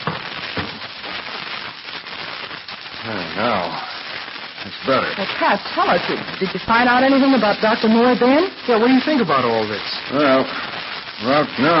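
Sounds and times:
wood fire crackling and popping as a log is added: 0:00.0 - 0:11.7
speech: 0:03.1 - 0:04.0, 0:04.6 - 0:11.7.

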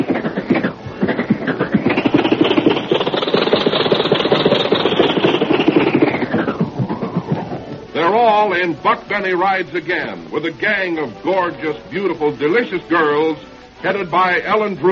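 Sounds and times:
old 1927 Maxwell car engine sputtering: 0:00.0 - 0:10.7
speech: 0:08.4 - 0:14.9.

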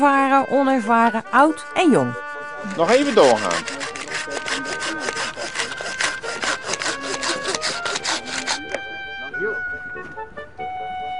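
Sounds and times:
speech: 0:00.0 - 0:03.8
hand saw cutting willow branches during pollarding in Rozenburg: 0:02.2 - 0:08.8.

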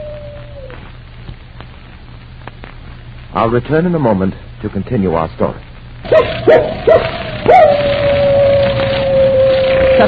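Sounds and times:
dog howling: 0:00.0 - 0:00.9, 0:06.1 - 0:10.0
speech: 0:03.4 - 0:07.6
dog yipping: 0:06.1 - 0:10.0.

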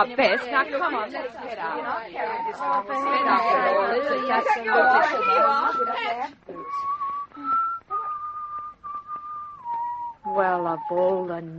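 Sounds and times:
speech: 0:00.0 - 0:06.9, 0:10.3 - 0:11.5
man whistling a slow familiar melody: 0:04.8 - 0:11.2.

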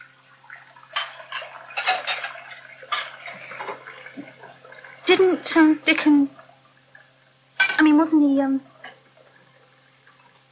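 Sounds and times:
water sloshing while washing dishes: 0:00.0 - 0:10.5
crockery clinking while dishes are washed and dried: 0:01.0 - 0:03.2, 0:07.6 - 0:08.0
speech: 0:05.1 - 0:06.4, 0:08.0 - 0:08.7.

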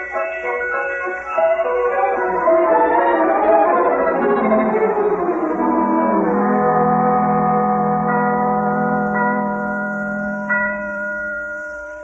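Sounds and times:
bells ringing: 0:00.0 - 0:12.0.

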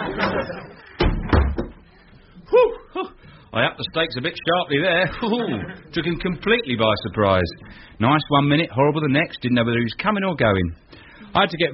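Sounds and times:
laughter: 0:00.0 - 0:01.0, 0:05.0 - 0:06.2
door being opened and pushed shut: 0:01.0 - 0:01.8
speech: 0:03.6 - 0:11.7.

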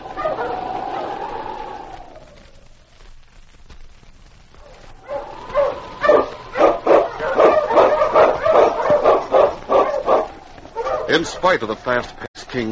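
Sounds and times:
dog barking loudly: 0:00.0 - 0:01.2, 0:04.6 - 0:11.6
long wavering howl: 0:00.0 - 0:02.5, 0:05.0 - 0:10.5
speech: 0:11.2 - 0:12.6.

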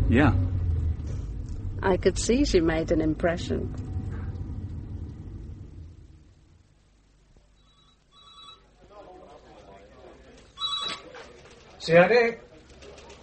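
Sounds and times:
low rumble: 0:00.0 - 0:07.2
speech: 0:00.1 - 0:00.4, 0:01.8 - 0:03.9, 0:11.8 - 0:12.4
telephone ringing in trilling bursts: 0:07.6 - 0:08.8, 0:10.6 - 0:11.1.

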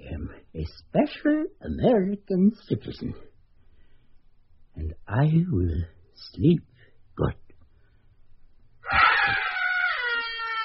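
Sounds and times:
speech: 0:00.6 - 0:03.3, 0:04.8 - 0:07.4
person screaming: 0:08.8 - 0:10.6.

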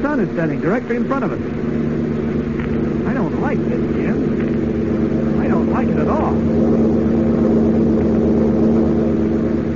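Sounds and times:
airplane engine droning in flight: 0:00.0 - 0:09.7
speech: 0:00.2 - 0:01.8, 0:03.5 - 0:04.4.

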